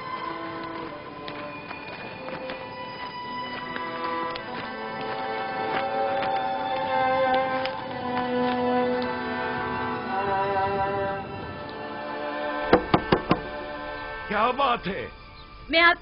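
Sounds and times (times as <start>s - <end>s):
soft sustained music: 0.0s - 16.0s
knocking on a door: 12.7s - 13.6s
speech: 14.5s - 16.0s.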